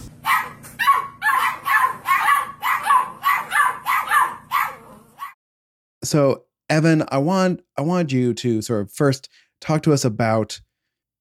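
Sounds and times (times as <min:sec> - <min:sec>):
puppy barking and yipping with whimpery notes: 0:00.0 - 0:05.4
speech: 0:06.1 - 0:10.7.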